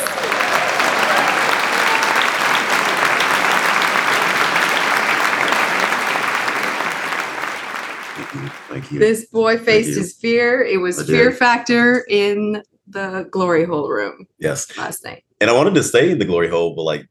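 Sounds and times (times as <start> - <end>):
laughter: 0.0 - 9.0, 9.7 - 10.1, 10.8 - 11.4, 15.4 - 17.1
round of applause from a group: 0.0 - 9.0
speech: 8.9 - 17.1.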